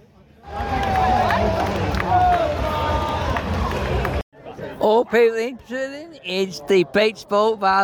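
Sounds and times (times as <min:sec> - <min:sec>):
large stadium crowd roaring with overlapping chatter before kickoff: 0:00.0 - 0:05.1
speech: 0:04.9 - 0:07.8.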